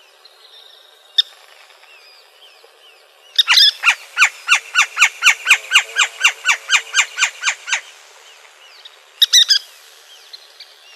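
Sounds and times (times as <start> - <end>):
Western kingbird calls in Arizona: 3.4 - 8.0.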